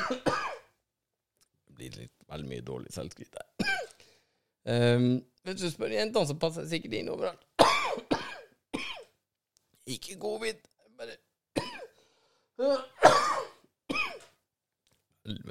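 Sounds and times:
harsh, throaty coughs: 0.0s - 0.7s, 3.6s - 4.0s, 7.6s - 9.1s, 11.6s - 12.0s, 12.6s - 14.3s
speech: 1.9s - 3.8s, 4.6s - 7.5s, 9.9s - 11.2s, 12.6s - 13.3s, 15.2s - 15.4s.

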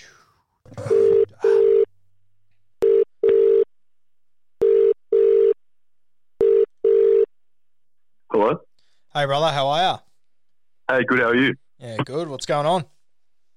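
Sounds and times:
phone line double ringing tone: 0.9s - 1.9s, 2.8s - 3.7s, 4.6s - 5.6s, 6.4s - 7.3s
speech: 8.4s - 10.1s, 10.9s - 12.9s.

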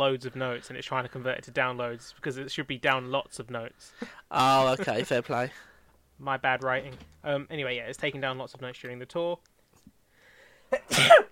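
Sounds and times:
speech: 0.0s - 9.5s, 10.7s - 11.3s
person sneezing: 10.7s - 11.3s.

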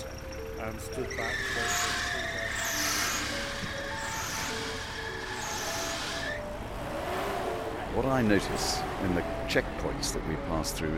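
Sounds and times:
broadband road rumble: 0.0s - 10.9s
car engine droning down a mountain road: 0.0s - 10.9s
speech: 0.6s - 2.4s, 8.0s - 10.9s
faint brake-like hisses: 1.1s - 7.6s.

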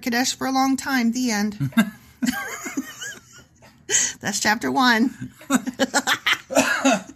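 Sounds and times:
speech: 0.0s - 2.7s, 3.9s - 7.1s
breathy laughter: 1.6s - 3.5s, 5.4s - 7.1s
harsh coughs: 6.5s - 7.1s.

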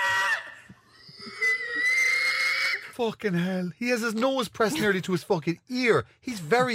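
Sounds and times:
man imitating pig squeals: 0.0s - 3.0s
speech: 3.0s - 6.7s.

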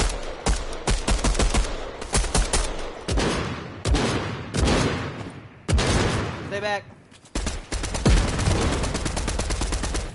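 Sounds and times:
video game gunfire: 0.0s - 6.6s, 7.3s - 10.1s
video game grenade explosion: 3.1s - 6.6s, 8.0s - 10.1s
speech: 6.7s - 7.0s.

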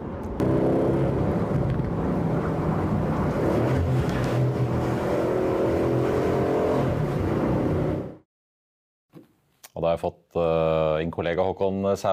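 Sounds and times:
British luxury sports car engine revving and accelerating: 0.4s - 8.2s
speech: 9.8s - 12.1s.

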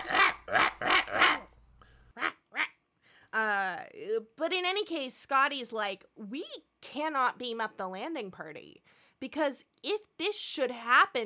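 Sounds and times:
electronically processed dog barking with alien sound effects: 0.0s - 1.5s
speech: 4.4s - 11.2s.

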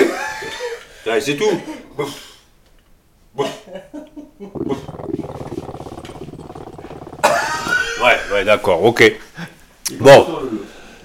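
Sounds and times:
speech: 1.0s - 2.3s, 3.4s - 5.5s, 8.0s - 10.6s
dog grunting: 4.5s - 8.2s.

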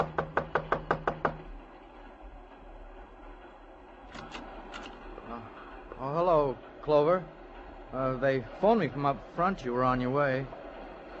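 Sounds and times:
sharp knocking on a door: 0.0s - 1.5s
low steady rumble: 0.0s - 11.1s
speech: 8.3s - 10.6s.

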